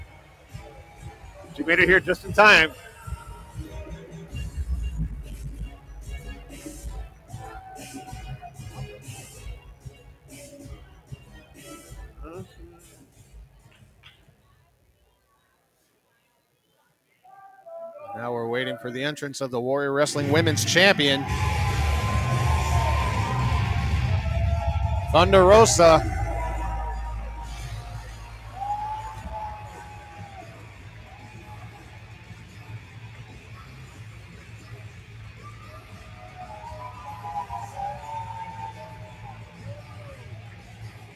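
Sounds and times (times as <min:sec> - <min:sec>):
large crowd cheering and roaring in a big arena: 0:00.0 - 0:02.7, 0:20.1 - 0:41.1
announcers talking over crowd noise: 0:01.4 - 0:02.9, 0:17.7 - 0:30.3
speech: 0:01.6 - 0:02.9, 0:18.8 - 0:21.7, 0:25.1 - 0:26.2
loud siren-like wail: 0:21.2 - 0:30.5.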